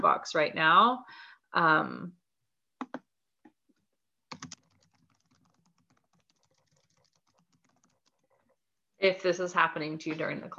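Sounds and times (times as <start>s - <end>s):
speech: 0.0s - 2.2s, 9.0s - 10.5s
typing on a computer keyboard: 4.3s - 8.6s.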